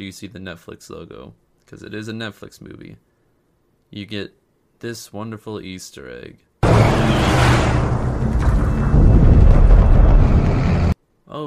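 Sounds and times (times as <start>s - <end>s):
speech: 0.0s - 3.1s, 3.9s - 7.2s
loud deep rumble of thunder: 6.6s - 11.0s
steady low roar: 6.6s - 11.0s.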